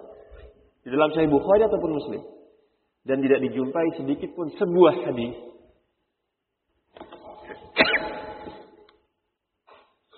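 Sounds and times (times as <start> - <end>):
speech: 0.8 - 2.4, 3.0 - 5.5
person sneezing: 7.7 - 8.5.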